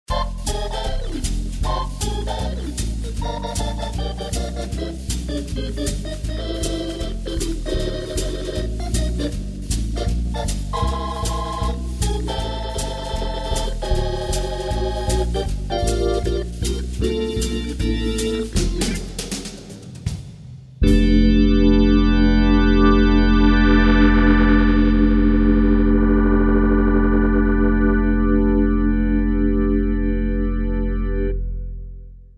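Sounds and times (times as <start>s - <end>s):
electronic organ: 0.1s - 19.6s, 20.8s - 32.3s
drums: 0.1s - 21.8s.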